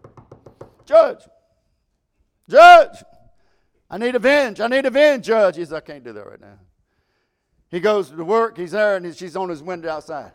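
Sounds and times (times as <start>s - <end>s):
knocking on a door: 0.0s - 0.9s
speech: 0.9s - 1.4s, 2.5s - 3.1s, 3.9s - 6.7s, 7.7s - 10.3s
person making a short loud vocal exclamation: 2.5s - 3.0s.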